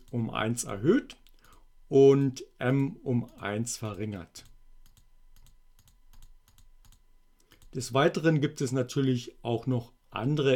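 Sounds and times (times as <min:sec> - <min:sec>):
speech: 0:00.1 - 0:01.2, 0:01.9 - 0:04.5, 0:07.7 - 0:10.5
computer mouse clicks during a programming demonstration: 0:04.4 - 0:07.8.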